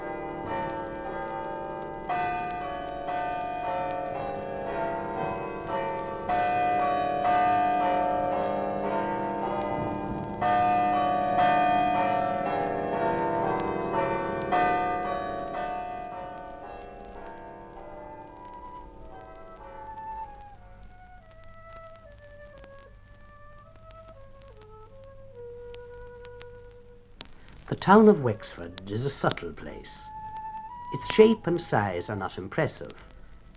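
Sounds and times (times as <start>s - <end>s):
church bells chiming: 0.0s - 19.0s
speech: 27.8s - 30.2s, 30.9s - 33.0s.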